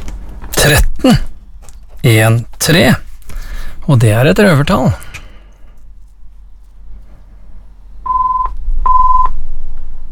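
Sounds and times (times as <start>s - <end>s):
low rumble: 0.0s - 10.1s
speech: 0.7s - 1.3s, 2.0s - 3.0s, 3.9s - 5.0s
steady electronic beeps: 8.0s - 9.3s.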